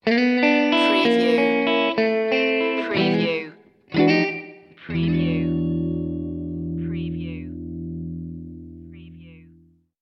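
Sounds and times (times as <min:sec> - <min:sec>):
sad guitar sting: 0:00.5 - 0:09.7.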